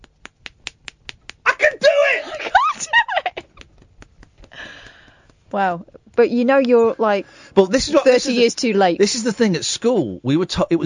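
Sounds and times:
finger whip slaps made with hand: 0.0s - 1.5s
people laughing: 2.2s - 4.7s
speech: 5.5s - 10.8s.

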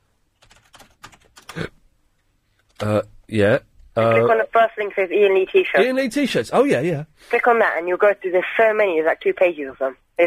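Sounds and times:
typing a name into a Yahoo search on a computer keyboard: 0.4s - 1.6s
speech: 1.5s - 1.8s, 2.8s - 10.2s.

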